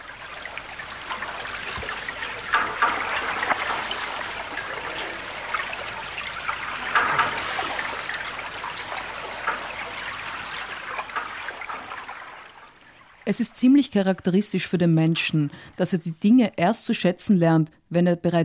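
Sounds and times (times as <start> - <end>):
trickling bubbling water in a lake: 0.0 - 14.2
speech: 13.3 - 18.4.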